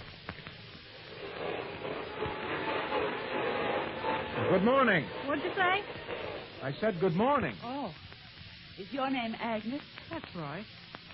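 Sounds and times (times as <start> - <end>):
vacuum cleaner droning behind a closed door: 0.0 - 11.1
speech: 4.5 - 8.0, 8.8 - 10.8.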